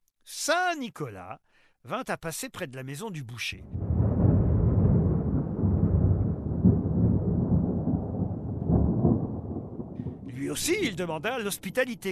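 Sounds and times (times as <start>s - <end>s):
speech: 0.5s - 3.9s, 10.5s - 12.1s
rumbling thunder: 3.6s - 11.3s.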